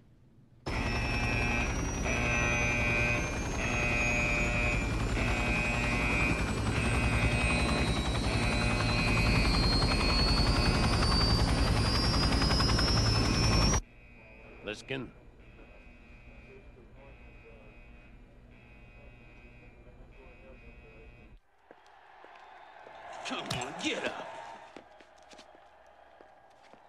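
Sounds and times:
helicopter turbine whine spooling up: 0.7s - 21.4s
helicopter engines warming up: 0.7s - 26.8s
speech: 14.9s - 15.2s.

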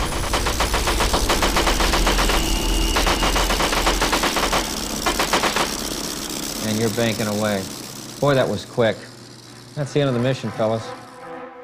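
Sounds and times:
machine gun fire with tracers during a fighter plane attack run: 0.0s - 8.6s
low steady rumble: 0.0s - 10.2s
speech: 6.8s - 9.1s, 9.8s - 11.0s.

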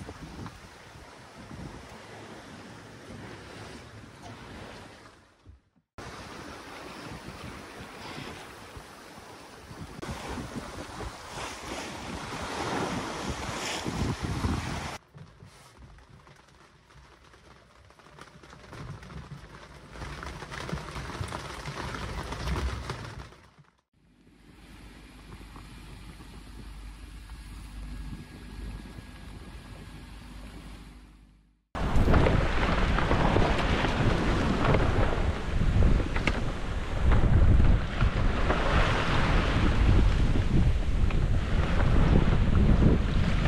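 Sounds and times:
wind roaring across the microphone: 0.0s - 5.0s, 6.0s - 15.0s, 25.2s - 30.9s, 31.8s - 43.4s
waves rushing and slapping against a moving sailboat's hull: 0.0s - 23.6s, 31.8s - 43.4s.

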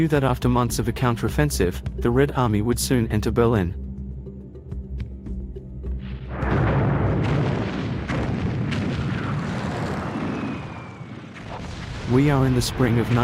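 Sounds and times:
speech: 0.0s - 3.8s, 12.1s - 13.2s
heavy rumbling of warplanes bombing a city: 6.1s - 13.2s
explosions from warplanes bombing a city: 6.2s - 13.2s.

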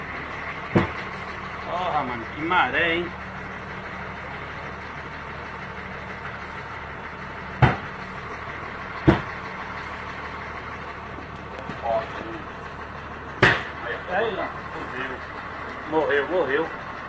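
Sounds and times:
car engine idling and stalling: 0.0s - 17.0s
speech: 1.8s - 3.2s.

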